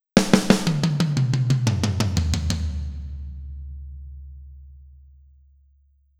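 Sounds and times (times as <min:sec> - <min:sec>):
drum fill with reverb: 0:00.0 - 0:04.8.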